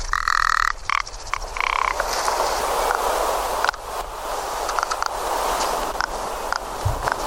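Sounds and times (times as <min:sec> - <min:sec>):
rock ptarmigan calls in the Larra massif: 0:00.0 - 0:07.2
rustling: 0:01.4 - 0:07.2.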